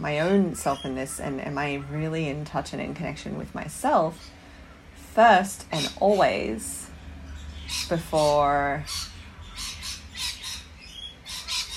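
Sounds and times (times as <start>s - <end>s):
speech: 0.0s - 4.4s, 5.2s - 6.8s, 7.7s - 9.1s
birds chirping and squawking outdoors: 0.0s - 11.7s.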